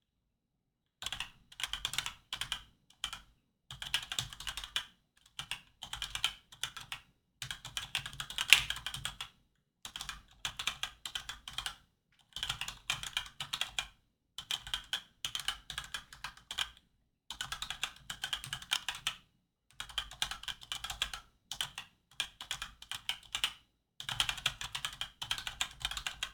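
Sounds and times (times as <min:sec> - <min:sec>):
typing on a Razer Pro Type Ultra: 0:01.0 - 0:26.3.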